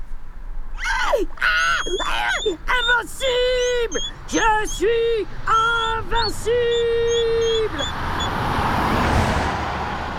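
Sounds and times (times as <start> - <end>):
speech: 1.2 - 8.4
car driving past on a road: 7.9 - 10.1.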